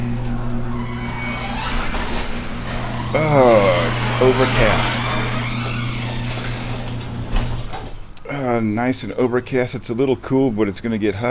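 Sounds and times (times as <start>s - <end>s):
grinding scraping rattle of garage door: 0.0s - 8.2s
high-pitched squeal of garage door: 0.0s - 8.5s
garage door rumbling open: 0.0s - 10.5s
garage door motor hum: 0.0s - 11.0s
speech: 3.1s - 5.1s, 8.5s - 11.2s.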